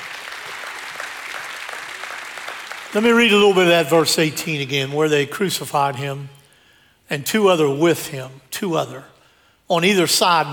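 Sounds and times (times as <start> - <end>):
audience clapping hands in praise: 0.0 - 3.5
speech: 2.9 - 6.4, 7.1 - 9.1, 9.7 - 10.5.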